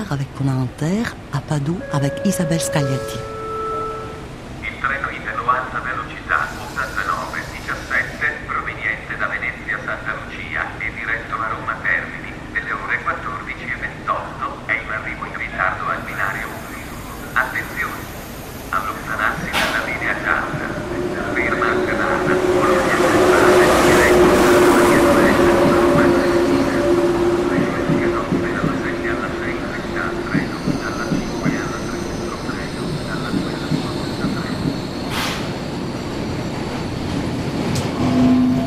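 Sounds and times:
speech: 0:00.0 - 0:03.3
indistinct voices on a subway platform: 0:00.0 - 0:04.2, 0:15.9 - 0:35.5
subway train rumbling into the station: 0:00.0 - 0:38.6.

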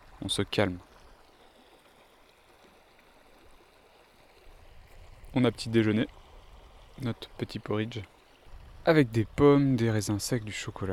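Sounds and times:
water trickling from hanging camping water bag: 0:00.0 - 0:10.9
speech: 0:00.3 - 0:00.9, 0:05.4 - 0:06.2, 0:07.0 - 0:08.2, 0:08.8 - 0:10.9.

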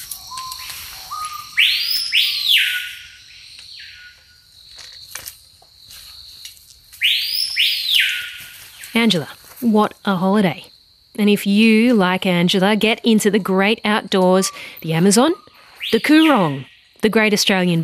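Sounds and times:
insects: 0:00.0 - 0:17.8
screaming piha whistled call in the Amazon: 0:00.3 - 0:03.2, 0:07.0 - 0:08.6, 0:15.4 - 0:16.8
speech: 0:09.0 - 0:17.8.

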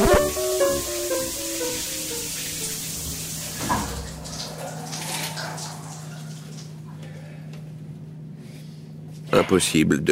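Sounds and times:
brief squeaky tonal whine: 0:00.0 - 0:01.1
water streaming steadily from a shower: 0:00.0 - 0:06.9
speech: 0:09.5 - 0:10.0.

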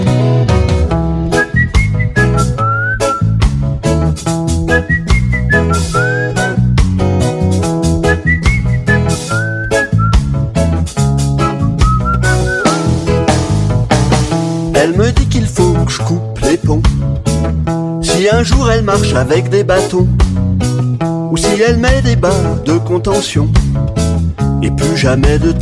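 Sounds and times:
full band accompaniment with a driving beat: 0:00.0 - 0:25.6
loud human whistling melody: 0:01.3 - 0:03.4, 0:04.6 - 0:06.8, 0:07.8 - 0:10.4, 0:11.4 - 0:13.2
speech: 0:18.8 - 0:20.4, 0:21.3 - 0:25.6.

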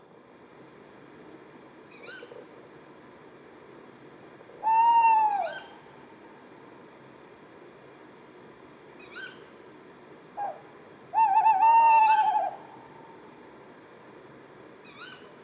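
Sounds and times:
tawny owl Strix aluco hooting at Etang de Beaumont, Drôme: 0:04.6 - 0:05.8, 0:10.4 - 0:12.9.

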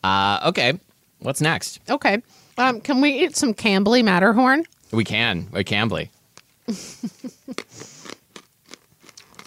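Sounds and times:
speech: 0:00.0 - 0:07.9
chewing and grinding of cough drop: 0:07.5 - 0:09.4
hard herbal cough drop crunched between the teeth: 0:07.6 - 0:09.4.

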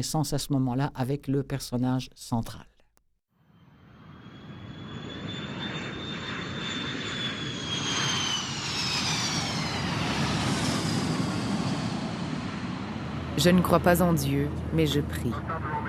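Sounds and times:
speech: 0:00.0 - 0:02.7, 0:13.4 - 0:15.8
airplane engine drone inside cabin 15,000 feet above Massachusetts: 0:03.5 - 0:15.8.

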